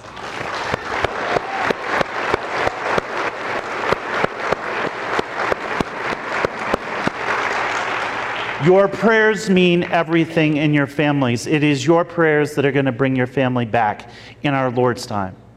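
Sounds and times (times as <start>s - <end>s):
one pair of hands clapping in a regular sharp beat: 0.0s - 8.6s
audience applauding: 0.0s - 10.0s
speech: 8.6s - 15.4s.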